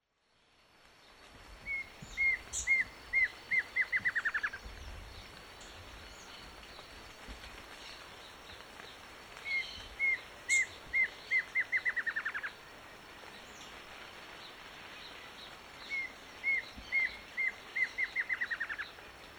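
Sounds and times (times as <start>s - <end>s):
plain antvireo Dysithamnus mentalis calling: 1.7s - 4.6s, 9.4s - 12.6s, 15.8s - 19.0s.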